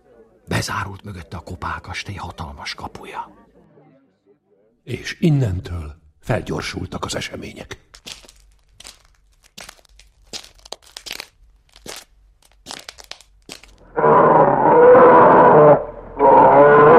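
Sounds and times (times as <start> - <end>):
speech: 0.6 - 3.4, 4.8 - 8.0
crunches and cracks: 7.1 - 13.9
old tame bear growling loudly: 13.8 - 16.9.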